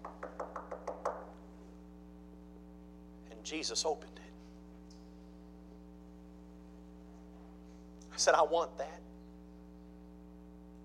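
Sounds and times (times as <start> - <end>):
knocking on a door: 0.0 - 1.3
steady low hum: 0.0 - 10.8
speech: 3.4 - 4.3, 8.2 - 9.1.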